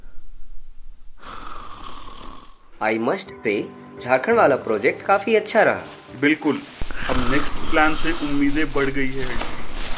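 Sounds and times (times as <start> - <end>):
mother snoring while asleep in a chair: 1.2 - 2.8, 6.9 - 8.1
speech: 2.8 - 9.6.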